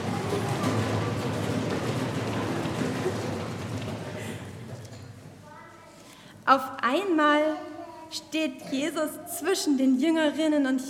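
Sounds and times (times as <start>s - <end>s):
men running back to Jerusalem on the ground: 0.0s - 5.3s
speech: 6.5s - 10.8s.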